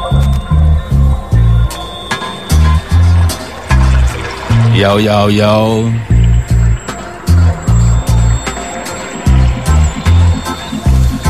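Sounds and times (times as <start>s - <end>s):
deep pulsing bassline: 0.0s - 11.2s
watery splashing and liquid swirls: 1.7s - 11.2s
speech: 4.8s - 6.1s.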